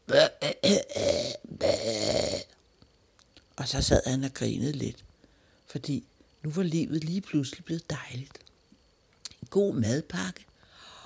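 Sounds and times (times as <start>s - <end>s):
loud rumbling burp: 0.1s - 2.5s
speech: 3.7s - 5.1s, 5.7s - 8.4s, 9.5s - 10.5s.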